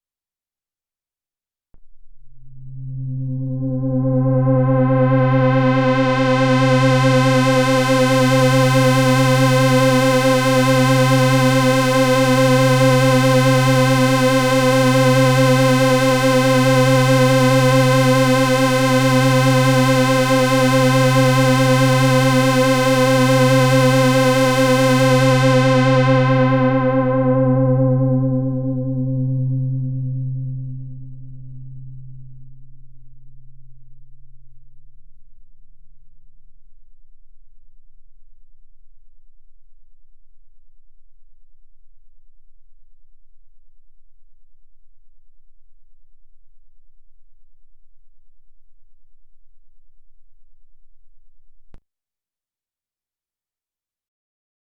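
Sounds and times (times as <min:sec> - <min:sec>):
low-pass filtered synth: 0:01.8 - 0:35.3.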